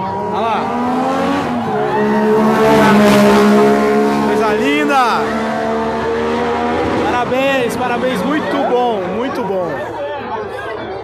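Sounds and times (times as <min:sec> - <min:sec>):
classic Lotus race car engine revving and accelerating: 0:00.0 - 0:09.2.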